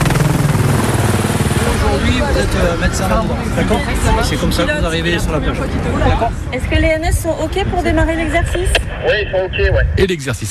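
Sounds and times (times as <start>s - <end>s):
gendarmerie helicopter taking off with rotor chop: 0.0s - 6.0s
crowd chatter: 1.6s - 9.9s
speech: 2.2s - 10.5s.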